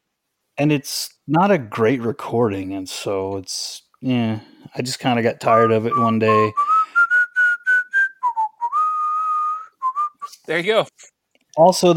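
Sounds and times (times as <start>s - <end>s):
speech: 0.6s - 6.7s, 10.5s - 11.9s
person whistling a tune: 5.5s - 10.4s.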